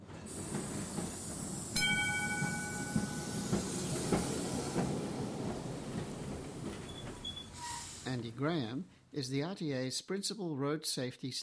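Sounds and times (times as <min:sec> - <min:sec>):
tram running on rails: 0:00.0 - 0:08.8
speech: 0:08.1 - 0:11.4.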